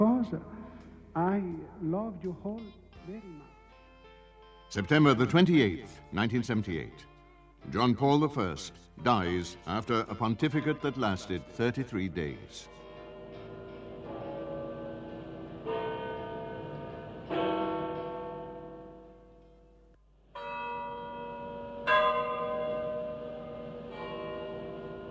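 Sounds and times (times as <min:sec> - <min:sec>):
speech: 0:00.0 - 0:00.6, 0:01.2 - 0:03.5, 0:04.7 - 0:12.8
large church bells of St. Peter's tolling for a death: 0:07.8 - 0:25.0.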